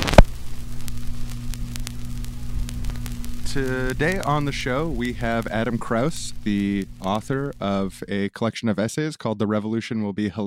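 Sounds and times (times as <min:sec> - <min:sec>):
record player needle set onto a turning vinyl record: 0:00.0 - 0:08.0
vinyl record crackles and surface noise: 0:00.0 - 0:08.1
steady low mains hum from a record player: 0:00.0 - 0:08.3
speech: 0:03.6 - 0:10.4.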